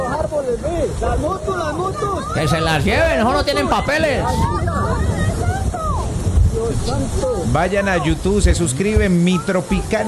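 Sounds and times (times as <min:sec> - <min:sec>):
strong windstorm gusting: 0:00.0 - 0:10.0
speech: 0:00.6 - 0:05.1, 0:06.6 - 0:10.0.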